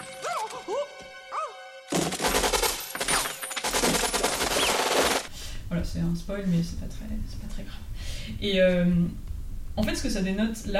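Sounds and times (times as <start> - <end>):
Uzi automatic fire after being dropped down a staircase in a film: 1.9 - 5.3
speech: 6.0 - 10.7.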